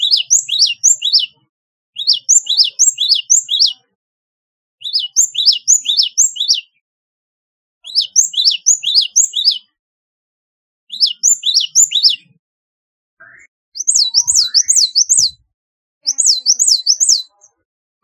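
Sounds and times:
Java sparrow sharp high chirping: 0:00.0 - 0:01.4, 0:02.0 - 0:03.8, 0:04.8 - 0:06.8, 0:07.8 - 0:09.7, 0:10.9 - 0:12.4, 0:13.2 - 0:15.4, 0:16.0 - 0:18.0.

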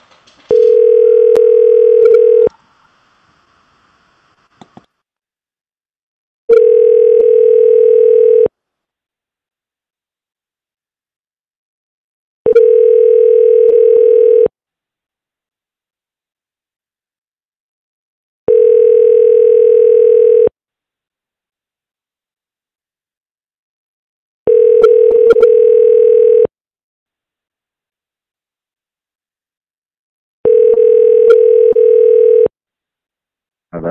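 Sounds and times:
telephone ringing tones while placing a call on a call-in show: 0:00.5 - 0:02.5, 0:06.5 - 0:08.5, 0:12.5 - 0:14.5, 0:18.5 - 0:20.5, 0:24.5 - 0:26.5, 0:30.4 - 0:32.5.

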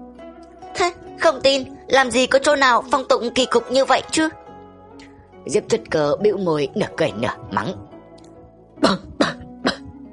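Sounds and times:
speech: 0:00.8 - 0:04.4, 0:05.4 - 0:07.9, 0:08.8 - 0:09.1
person coughing phlegmy coughs: 0:08.8 - 0:10.0.

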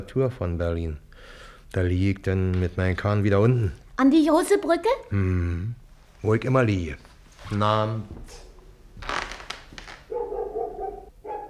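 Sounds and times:
speech: 0:00.0 - 0:08.4
dog barking inside a house: 0:10.1 - 0:11.4.

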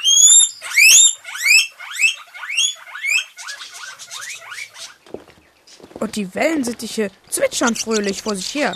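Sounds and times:
hungry guinea pigs whistling at a pet shop: 0:00.0 - 0:05.0, 0:07.3 - 0:08.7
speech: 0:06.0 - 0:08.7.

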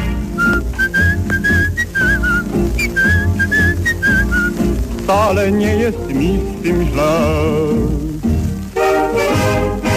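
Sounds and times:
steady instrumental backing music: 0:00.0 - 0:09.9
person whistling a lilting tune: 0:00.4 - 0:04.7
speech: 0:05.1 - 0:08.1.

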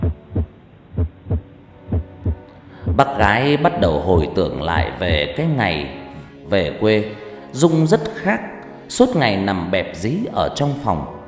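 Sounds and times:
heartbeat thumping in double beats: 0:00.0 - 0:03.1
soft hum: 0:00.0 - 0:03.4
speech: 0:03.0 - 0:11.2.

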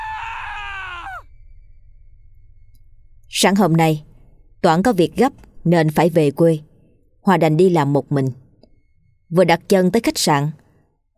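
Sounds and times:
piercing scream: 0:00.0 - 0:01.3
speech: 0:03.4 - 0:08.4, 0:09.3 - 0:10.6.

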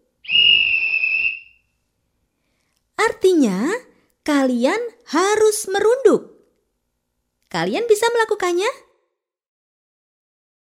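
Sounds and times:
long whistle blast signalling children in a game: 0:00.2 - 0:01.7
speech: 0:03.3 - 0:06.3, 0:07.5 - 0:08.8.

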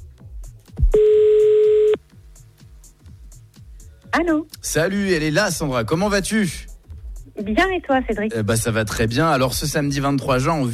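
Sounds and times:
telephone call dialing tone: 0:01.0 - 0:02.0
speech: 0:04.2 - 0:06.7, 0:07.4 - 0:10.7.

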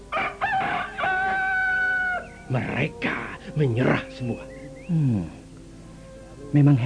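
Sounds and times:
fighting rooster crowing: 0:00.1 - 0:02.4
speech: 0:02.5 - 0:05.4, 0:06.5 - 0:06.8.

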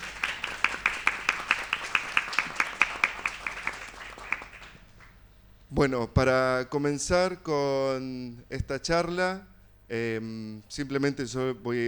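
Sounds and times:
audience in an auditorium at an arts festival fair clapping for the artists: 0:00.0 - 0:05.2
speech: 0:05.8 - 0:11.8.

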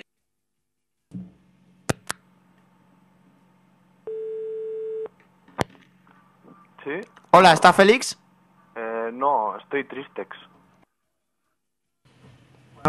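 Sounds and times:
steady mid-pitched telephone line tone on an international call to Canada: 0:04.0 - 0:05.1
speech: 0:06.8 - 0:08.2, 0:09.2 - 0:10.5.

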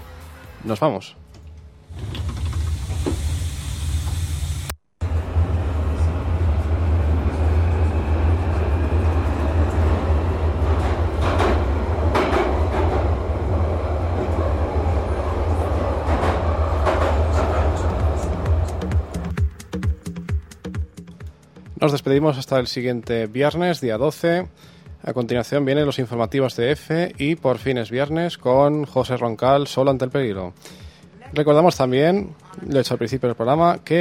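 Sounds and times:
speech: 0:00.6 - 0:01.2, 0:21.9 - 0:33.9
underground metro train arriving at its last stop: 0:01.9 - 0:19.4.

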